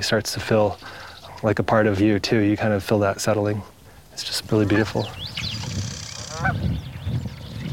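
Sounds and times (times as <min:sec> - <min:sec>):
speech: 0:00.0 - 0:05.3
birds calling with faint honking cries: 0:00.7 - 0:01.4, 0:03.9 - 0:07.7.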